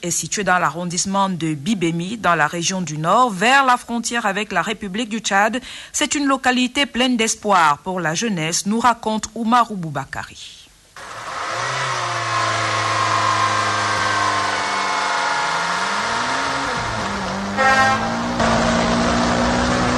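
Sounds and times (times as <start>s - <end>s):
speech: 0.0s - 10.6s
vehicle engine droning on National Road 1 at Pitoa in northern Cameroon: 11.0s - 19.9s.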